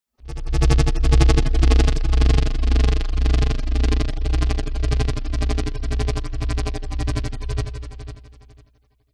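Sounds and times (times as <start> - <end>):
pulsating mid low stutter sound design: 0.2 - 8.6.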